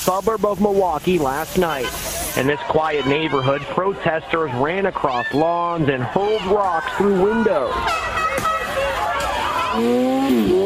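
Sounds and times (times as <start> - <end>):
speech: 0.0 - 8.2, 9.8 - 10.6
murmur of voices: 0.0 - 10.6
tires squealing through a burnout: 6.9 - 10.6
motorcycle engine revving hard: 9.6 - 10.6.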